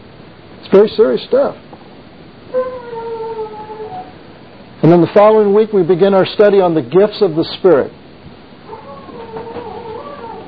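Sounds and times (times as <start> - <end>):
speech: 0.7 - 1.6, 4.8 - 8.0
dog howling: 2.5 - 4.2, 8.6 - 10.4.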